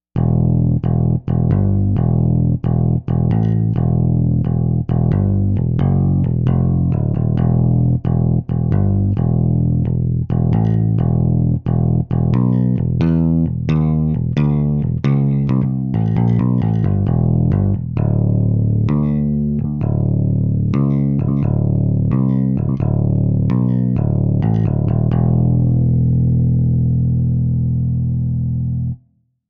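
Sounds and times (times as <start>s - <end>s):
picked bass: 0.0s - 29.4s.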